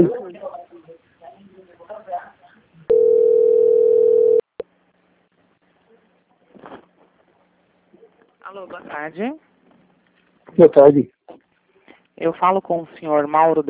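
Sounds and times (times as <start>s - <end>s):
steady single-pitched telephone line tone while a bank call is transferred: 2.9s - 4.5s
speech: 8.7s - 9.5s, 10.6s - 11.4s, 12.2s - 13.6s.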